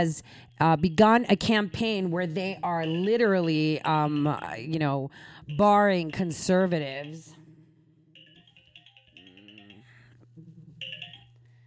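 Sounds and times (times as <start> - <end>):
speech: 0.0 - 7.4
mobile phone ringing with an electronic melody: 2.8 - 3.2, 8.1 - 10.2, 10.8 - 11.6.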